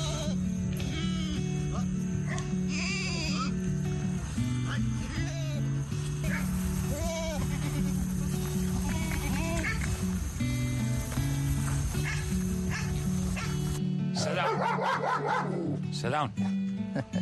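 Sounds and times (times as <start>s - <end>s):
dense steady noise: 0.0s - 13.8s
dog barking and yipping: 12.0s - 13.6s, 14.2s - 15.8s
speech: 16.0s - 17.1s.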